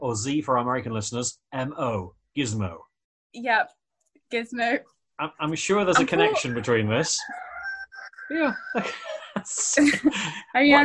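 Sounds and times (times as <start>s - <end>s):
speech: 0.1s - 7.5s, 8.3s - 10.8s
laughter: 5.4s - 7.3s, 8.3s - 10.8s
cockerel crowing: 6.1s - 9.2s.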